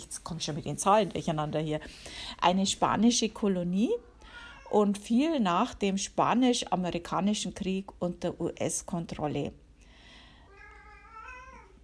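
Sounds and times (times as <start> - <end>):
speech: 0.0 - 4.1, 4.7 - 9.6
low steady hum: 0.0 - 11.8
cat meowing: 10.5 - 11.8.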